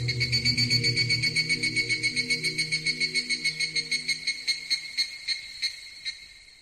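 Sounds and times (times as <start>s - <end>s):
low hum: 0.0s - 2.8s
cicadas buzzing: 0.0s - 6.6s.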